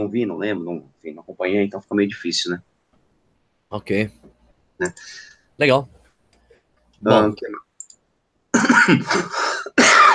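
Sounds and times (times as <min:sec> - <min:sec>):
speech: 0:00.0 - 0:02.7, 0:03.7 - 0:04.2, 0:04.8 - 0:06.0, 0:07.0 - 0:07.7, 0:08.6 - 0:09.5
person coughing: 0:08.6 - 0:10.1.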